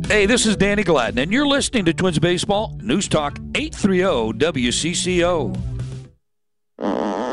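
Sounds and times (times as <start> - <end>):
speech: 0.1 - 5.8
fart sound effect: 6.8 - 7.2.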